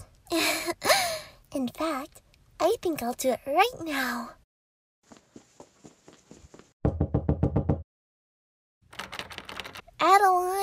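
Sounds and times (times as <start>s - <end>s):
speech: 1.6s - 4.4s, 10.0s - 10.6s
heavy pounding on a door: 6.8s - 7.8s.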